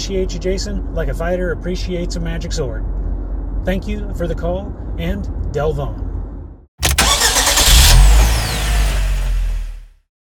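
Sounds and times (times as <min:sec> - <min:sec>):
speech: 0:00.1 - 0:03.0, 0:03.6 - 0:06.0
car engine cranking and starting: 0:06.8 - 0:10.0.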